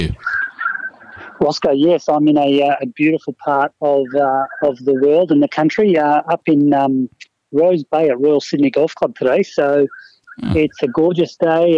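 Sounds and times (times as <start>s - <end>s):
birds chirping outdoors: 0.0s - 5.5s, 8.7s - 11.7s
speech: 1.4s - 11.7s.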